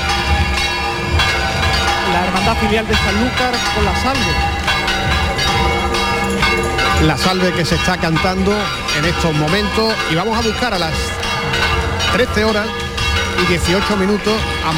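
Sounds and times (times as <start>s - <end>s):
busy crowded outdoor crowd: 0.0s - 14.7s
church bells ringing: 0.0s - 14.7s
speech: 2.5s - 4.7s, 6.6s - 12.8s, 13.4s - 14.7s.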